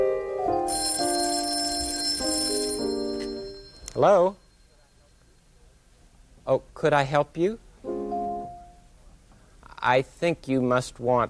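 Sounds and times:
telephone with bright metallic bell ringing: 0.6s - 4.7s
speech: 4.0s - 4.4s, 6.5s - 7.6s, 9.8s - 11.2s.

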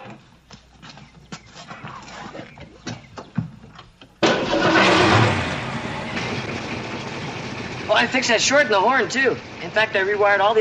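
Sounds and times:
freshly painted car's engine starting and running: 4.2s - 10.6s
speech: 7.9s - 10.6s.

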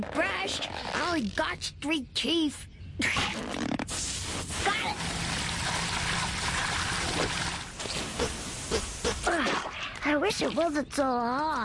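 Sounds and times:
speech: 0.0s - 3.6s, 10.1s - 11.6s
water pouring: 4.0s - 8.7s.

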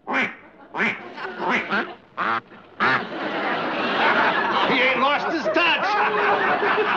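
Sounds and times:
duck call imitating quacking: 0.0s - 3.1s
crowd-like noise: 0.0s - 6.9s
laughter: 0.1s - 6.9s.

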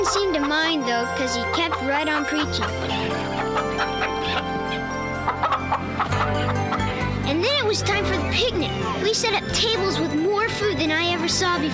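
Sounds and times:
speech: 0.0s - 4.5s, 5.8s - 11.7s
chickens clucking: 0.0s - 7.2s.

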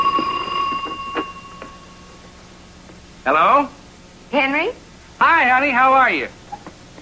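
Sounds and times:
telephone ringing with a steady electronic tone: 0.0s - 2.2s
speech: 3.2s - 6.4s.

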